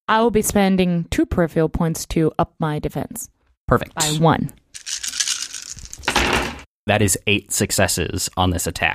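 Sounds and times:
speech: 0.1s - 5.1s, 6.9s - 8.9s
handful of dice rolled for an attack in a game: 4.8s - 6.3s.

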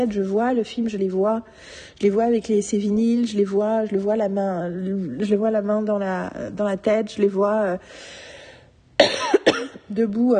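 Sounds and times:
speech: 0.0s - 8.3s, 9.9s - 10.3s
person coughing harshly: 9.0s - 9.9s.

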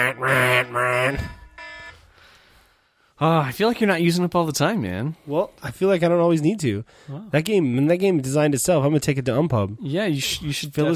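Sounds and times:
speech: 0.0s - 1.4s, 3.2s - 10.9s
timer alarm harsh buzzing bursts: 0.0s - 2.1s.

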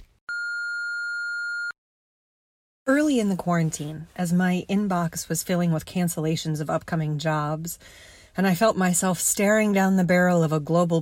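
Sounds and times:
voicemail beep single steady electronic tone: 0.3s - 1.8s
speech: 3.0s - 10.9s.

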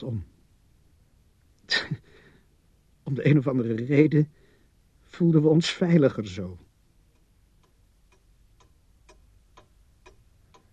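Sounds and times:
speech: 0.0s - 0.4s, 1.7s - 2.0s, 3.1s - 4.4s, 5.1s - 6.6s
low constant rumble: 0.0s - 10.7s
clock ticking loudly in a quiet room: 7.1s - 10.7s.

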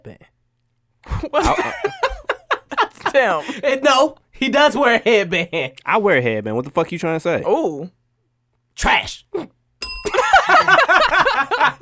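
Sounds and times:
speech: 1.2s - 1.9s, 3.1s - 8.0s, 8.8s - 9.6s
voices breaking into laughter: 1.3s - 3.7s, 10.1s - 11.8s
single bright bell ding: 9.8s - 11.4s.

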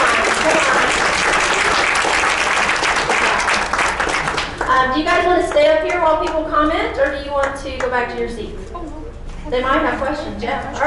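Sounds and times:
sizable crowd applauding: 0.0s - 6.0s
speech: 4.8s - 8.6s, 9.5s - 10.8s.

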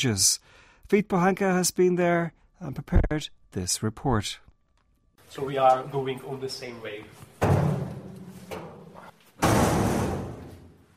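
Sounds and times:
speech: 0.0s - 4.4s, 5.3s - 7.6s
heavy door closing with a resonant thud: 7.4s - 10.8s.

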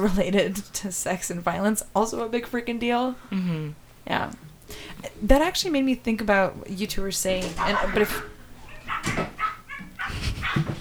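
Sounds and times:
speech: 0.0s - 8.3s, 9.0s - 9.3s
two cats trading short nasal meows and yowls: 7.5s - 10.7s.

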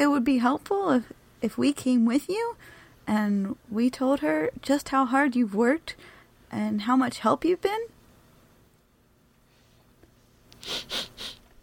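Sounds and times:
speech: 0.0s - 7.9s, 10.6s - 11.3s
quick breathy sniffles: 10.6s - 11.5s.

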